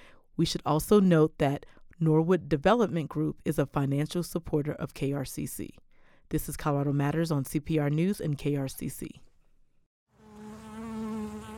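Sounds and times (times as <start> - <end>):
speech: 0.4 - 9.3
bees buzzing: 10.2 - 11.5.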